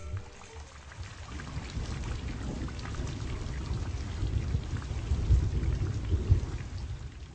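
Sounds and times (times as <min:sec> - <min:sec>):
steady heavy rain from a thunderstorm: 0:00.2 - 0:07.3
low rumble of thunder: 0:00.9 - 0:07.3.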